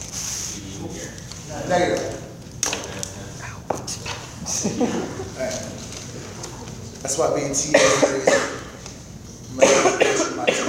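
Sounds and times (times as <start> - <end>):
speech: 0.8 - 2.2, 4.6 - 5.9, 7.0 - 8.5
laughter: 4.4 - 6.9
person coughing harshly: 7.7 - 8.8, 9.5 - 10.6.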